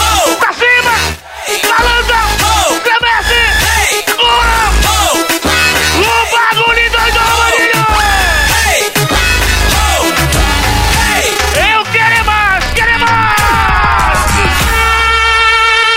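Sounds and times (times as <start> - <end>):
crowd yelling and whooping: 0.0 - 2.8, 7.0 - 14.9
pounding live music from a DJ: 0.0 - 15.8.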